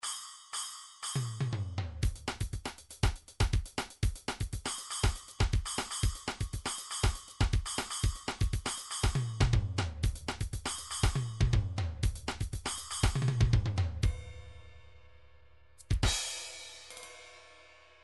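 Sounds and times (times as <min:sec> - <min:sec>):
MIDI drums bossa nova beat: 0:01.4 - 0:14.3, 0:15.8 - 0:16.6.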